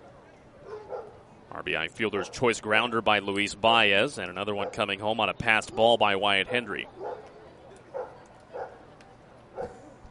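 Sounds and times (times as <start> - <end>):
murmur of crowd noise at a baseball stadium: 0.0 - 1.5, 5.8 - 10.0
dogs barking in a baseball stadium crowd: 0.6 - 1.2, 4.6 - 4.8, 6.4 - 7.3, 7.9 - 8.8, 9.6 - 10.0
speech: 1.6 - 7.1.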